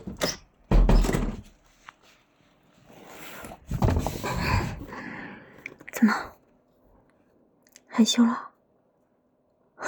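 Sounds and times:
door shutting with a heavy low thud: 0:00.1 - 0:01.6
speech: 0:06.0 - 0:06.3, 0:08.0 - 0:08.5.

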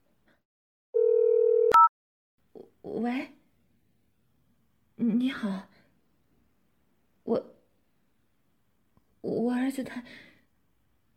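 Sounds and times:
telephone dial tone: 0:01.0 - 0:01.9
speech: 0:02.9 - 0:03.4, 0:05.1 - 0:05.7, 0:07.3 - 0:07.5, 0:09.2 - 0:10.3.

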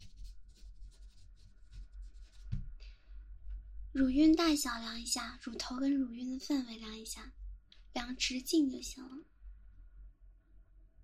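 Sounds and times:
pen scratching on paper writing notes: 0:00.0 - 0:02.6
speech: 0:04.0 - 0:09.3.

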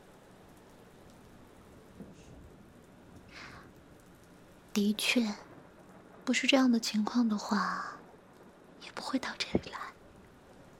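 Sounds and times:
faint thunder rumbling: 0:00.0 - 0:10.7
rainfall: 0:00.0 - 0:10.7
speech: 0:04.8 - 0:05.4, 0:06.3 - 0:08.0, 0:08.9 - 0:09.8.

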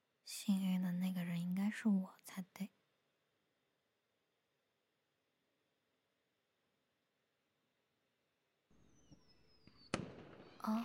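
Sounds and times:
speech: 0:00.4 - 0:02.8
firework whistling: 0:08.8 - 0:10.6
loud firework burst crackling: 0:09.5 - 0:10.6.

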